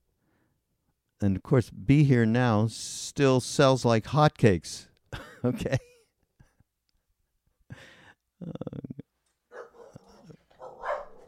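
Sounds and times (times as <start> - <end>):
speech: 1.2 - 5.9, 8.4 - 8.9
dog barking: 9.5 - 11.2.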